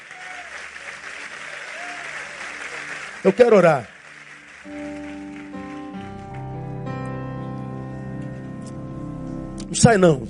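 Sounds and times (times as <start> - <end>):
audience applauding: 0.0 - 6.9
speech: 3.2 - 3.9, 9.7 - 10.2.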